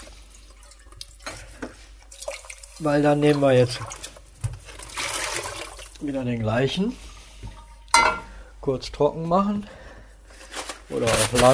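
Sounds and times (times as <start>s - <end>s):
water splashing as a cooking pot is rinsed out: 0.0s - 6.0s
speech: 2.8s - 4.0s, 6.0s - 7.0s, 8.7s - 9.8s, 10.9s - 11.5s.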